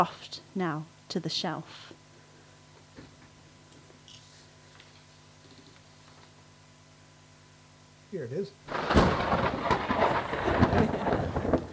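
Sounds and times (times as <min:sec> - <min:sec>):
speech: 0:00.0 - 0:02.0, 0:08.1 - 0:09.6
rolling thunderclap: 0:08.7 - 0:11.7.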